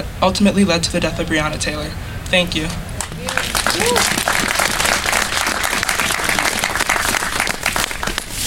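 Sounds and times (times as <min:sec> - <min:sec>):
speech: 0:00.2 - 0:04.3
crowd applauding with dense sustained clapping: 0:03.0 - 0:08.3.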